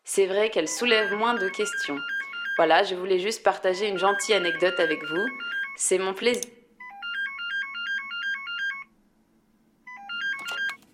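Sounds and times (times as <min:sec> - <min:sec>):
speech: 0:00.2 - 0:06.6
landline telephone ringing with an electronic trill: 0:00.7 - 0:05.8, 0:06.8 - 0:08.9, 0:09.9 - 0:10.8.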